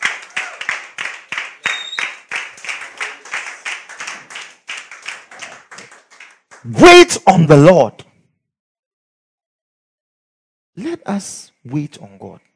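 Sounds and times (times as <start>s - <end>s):
audience clapping: 0.0s - 7.1s
speech: 6.6s - 8.1s, 11.2s - 12.5s.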